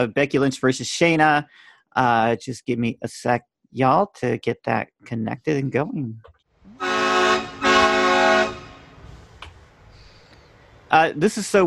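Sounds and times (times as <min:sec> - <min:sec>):
speech: 0:00.0 - 0:07.0, 0:10.9 - 0:11.6
truck horn blasts: 0:06.8 - 0:09.0.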